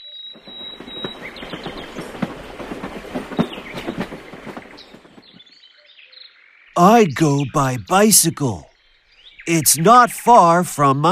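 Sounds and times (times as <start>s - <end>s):
train wheels clattering on rails: 0.4s - 5.4s
speech: 6.8s - 8.7s, 9.5s - 11.1s.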